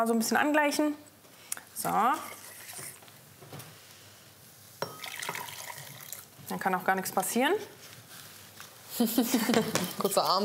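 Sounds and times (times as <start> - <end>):
speech: 0.0 - 1.1, 1.8 - 2.4, 6.5 - 7.8, 9.0 - 10.4
hot liquid pouring and splashing into a starch mixture: 4.8 - 6.4
steady trickling stream of hot liquid: 4.9 - 6.3.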